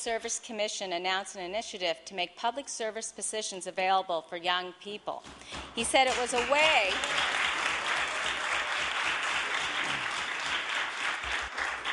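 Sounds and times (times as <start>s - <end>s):
speech: 0.0s - 7.5s
large group applauding in a legislative chamber: 6.1s - 11.9s.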